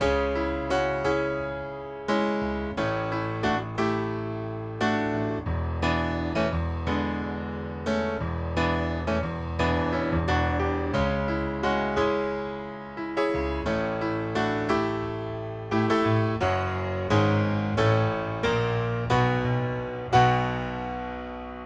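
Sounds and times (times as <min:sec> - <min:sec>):
piano chorus: 0:00.0 - 0:21.6.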